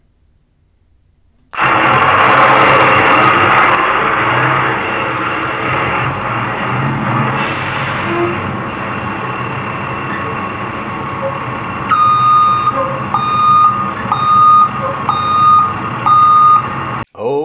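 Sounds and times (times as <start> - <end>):
bus engine starting and idling: 1.6 - 17.1.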